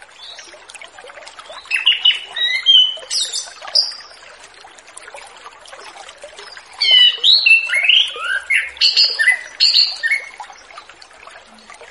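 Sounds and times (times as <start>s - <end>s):
orange-headed thrush whistled song: 1.6s - 4.1s, 6.4s - 10.4s.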